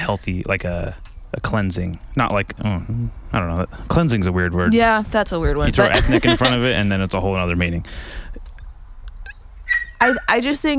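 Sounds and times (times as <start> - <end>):
laughter: 0.0 - 8.6
low rumble: 0.0 - 9.2
speech: 0.1 - 8.4, 10.0 - 10.7
Spanish greyhound puppy whimpering: 5.8 - 10.7.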